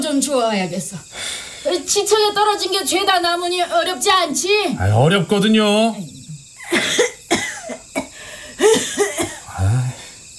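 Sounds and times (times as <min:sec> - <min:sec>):
speech: 0:00.0 - 0:06.1
person coughing inside a room: 0:06.7 - 0:10.0.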